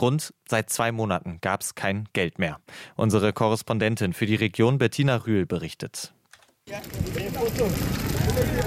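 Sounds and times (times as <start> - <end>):
speech: 0.0 - 8.6
fire burning cardboard, wood and tyres: 6.7 - 8.6.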